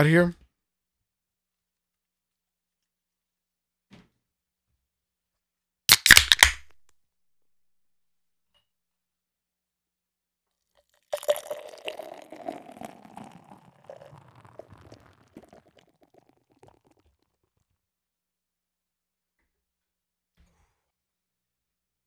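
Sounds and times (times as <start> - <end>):
speech: 0.0 - 0.4
IPA beer can cracking open: 5.9 - 6.7, 11.2 - 16.7
fizzy rustle of beer: 11.2 - 16.1.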